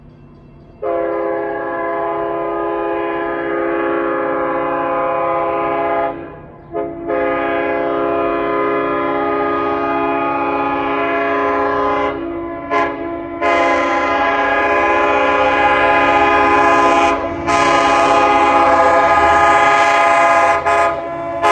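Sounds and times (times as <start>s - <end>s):
K5LL horn: 0.8s - 21.5s.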